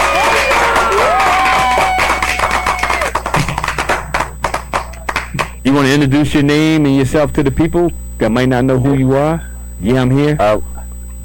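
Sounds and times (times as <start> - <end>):
crowd applause and cheering: 0.0 - 5.6
speech: 5.7 - 11.2.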